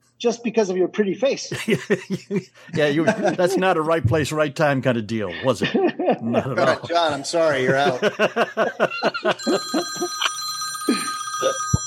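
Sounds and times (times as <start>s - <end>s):
speech: 0.2s - 11.8s
laughter: 1.5s - 4.1s, 5.2s - 10.3s
telephone ringing with high electronic tones: 9.1s - 11.8s.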